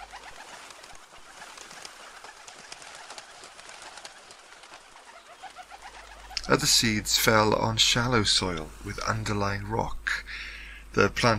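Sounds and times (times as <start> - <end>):
birds' wings fluttering: 0.0 - 7.2
flock of birds eating seed chirping: 0.0 - 11.3
speech: 6.5 - 11.3.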